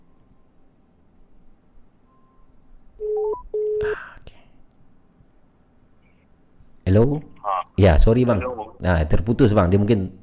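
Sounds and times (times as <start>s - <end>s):
telephone keypad tones while redialing a dropped call: 3.0s - 3.8s
speech: 7.0s - 10.2s.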